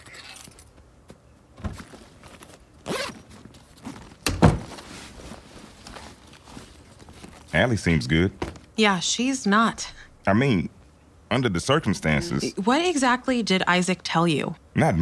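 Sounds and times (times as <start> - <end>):
keys jangling as they are handed over: 0.0 - 0.7
soft rustling and handling noises: 0.0 - 8.9
speech: 7.6 - 15.0.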